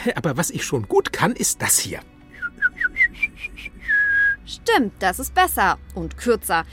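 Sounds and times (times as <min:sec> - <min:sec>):
speech: 0:00.0 - 0:02.8, 0:04.7 - 0:06.7
person whistling an imitation of a yellowhammer's song: 0:02.3 - 0:04.5.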